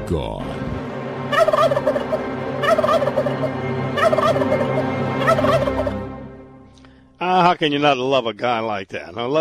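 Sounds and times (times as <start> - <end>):
speech: 0.1 - 0.8, 1.4 - 5.6, 7.6 - 9.4
turkey gobbling: 1.3 - 6.1.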